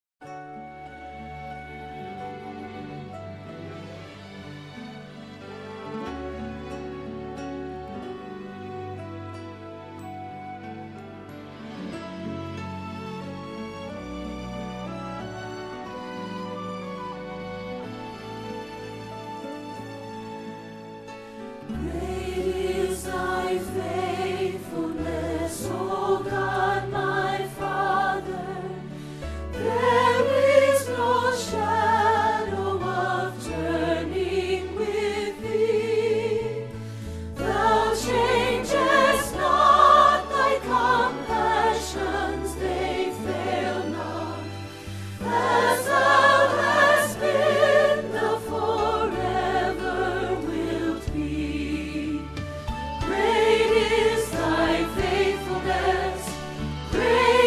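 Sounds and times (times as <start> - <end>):
soprano singing a hymn choir rehearsal part: 21.7 - 57.4.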